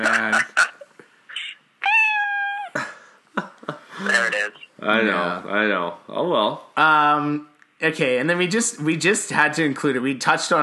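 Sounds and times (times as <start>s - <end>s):
laughter: 0.0s - 0.9s, 2.7s - 4.3s
cat meowing: 1.8s - 2.8s
speech: 4.8s - 10.6s.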